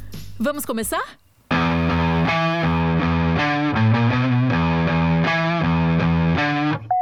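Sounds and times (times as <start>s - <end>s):
speech: 0.4s - 1.2s
loud distorted electric guitar playing power chords: 1.5s - 6.8s.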